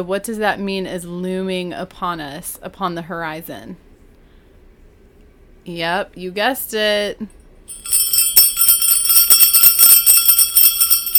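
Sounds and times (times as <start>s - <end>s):
speech: 0.0s - 3.8s, 5.6s - 8.0s
sleigh bells jingling: 7.7s - 11.1s.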